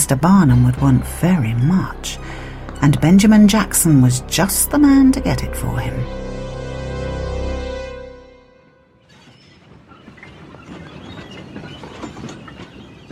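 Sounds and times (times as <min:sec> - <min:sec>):
deep droning rumble: 0:00.0 - 0:08.9
speech: 0:00.1 - 0:06.2
train wagons rolling over rail tracks: 0:09.1 - 0:13.1.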